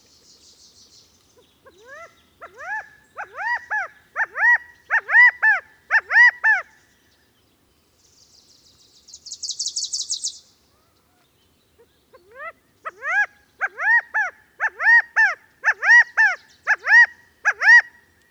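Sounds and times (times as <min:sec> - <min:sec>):
California quail calls: 0:01.6 - 0:06.7, 0:12.1 - 0:18.0.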